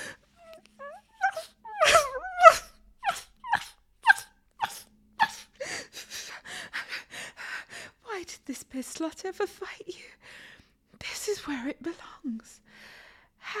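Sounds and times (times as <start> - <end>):
person imitating a puppy with high wavering whines: 0.0 - 5.5
person imitating a puppy with sharp little yips and barks: 0.4 - 5.5
speech: 9.0 - 10.2, 11.3 - 12.7.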